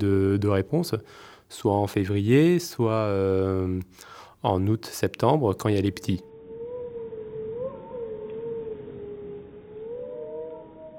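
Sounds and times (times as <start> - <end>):
speech: 0.0 - 6.3
pack of wolves howling in chorus: 5.9 - 10.9.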